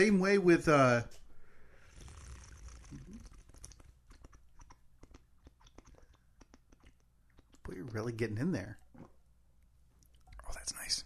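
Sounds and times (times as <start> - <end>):
speech: 0.0 - 1.2, 7.9 - 8.8
person slurping hot coffee: 1.8 - 7.6
sharp clicky mouth and lip sounds: 2.0 - 8.0, 8.8 - 10.5.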